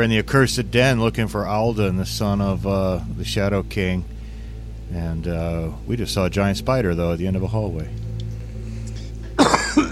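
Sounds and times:
speech: 0.0 - 4.1, 4.9 - 8.0
person coughing: 9.4 - 9.9.

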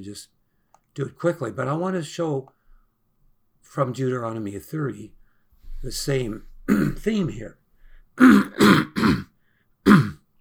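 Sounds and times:
speech: 0.0 - 0.4, 1.0 - 2.6, 3.6 - 5.2, 5.8 - 7.6, 8.2 - 10.0
man clearing throat: 6.7 - 7.1, 8.2 - 9.3, 9.9 - 10.3.

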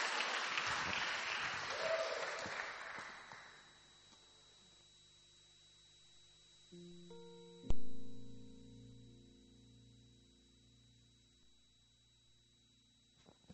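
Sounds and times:
crowd clapping: 0.0 - 3.6
low electrical hum: 3.3 - 13.5
steady droning tones: 3.5 - 13.5.

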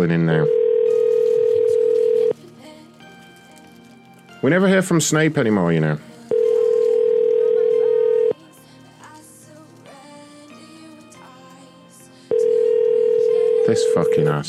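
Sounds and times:
speech: 0.0 - 0.6, 4.4 - 6.4, 13.7 - 14.4
phone ringback tone during an unanswered call: 0.0 - 2.4, 4.4 - 8.4, 12.3 - 14.4
sound: 0.0 - 14.4.

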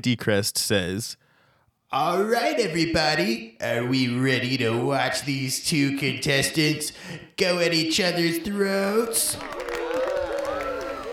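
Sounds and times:
speech: 0.0 - 1.2, 1.9 - 9.7
large crowd roaring, cheering, shouting and whooping: 8.8 - 11.1.

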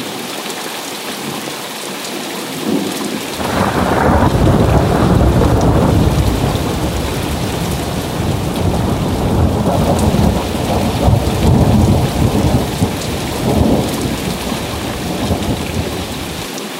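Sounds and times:
steady heavy rain: 0.0 - 16.7
deep rolling thunder: 3.2 - 16.4.

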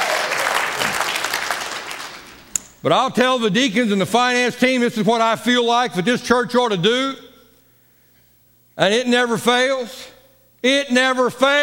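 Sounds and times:
congregation applauding: 0.0 - 2.5
speech: 2.8 - 7.2, 8.8 - 11.6.

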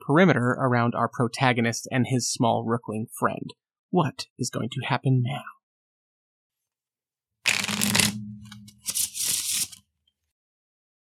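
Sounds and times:
speech: 0.1 - 5.6
deck of cards being riffle shuffled and bridged: 7.5 - 9.8.

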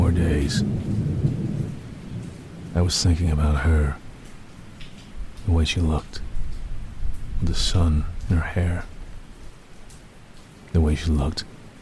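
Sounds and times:
deep rolling thunder: 0.0 - 2.7
steady rain hissing: 0.0 - 11.7
speech: 0.5 - 1.1, 2.8 - 4.0, 5.5 - 6.3, 7.4 - 8.9, 10.7 - 11.5.

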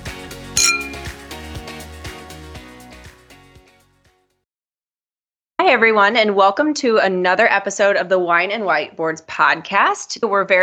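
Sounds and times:
steady rhythmic music bed: 0.0 - 3.3
wine glasses clinking in a toast: 0.6 - 1.1
speech: 5.7 - 10.6.

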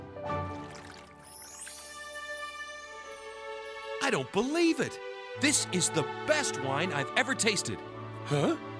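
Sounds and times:
water pouring into a vessel: 0.4 - 2.5
speech: 4.1 - 8.7.

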